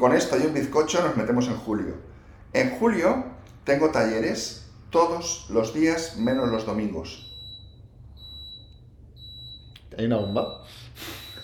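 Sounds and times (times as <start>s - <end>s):
speech: 0.0s - 7.3s, 9.9s - 11.2s
low rumbling background: 0.0s - 10.6s
high-pitched electronic alert beep: 6.1s - 11.4s.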